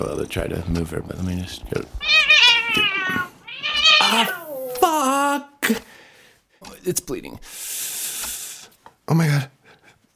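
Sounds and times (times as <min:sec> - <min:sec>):
speech: 0:00.0 - 0:02.1, 0:02.8 - 0:03.3, 0:06.9 - 0:07.6, 0:09.1 - 0:09.5
pet cat meowing loudly beside the microphone: 0:02.0 - 0:04.6.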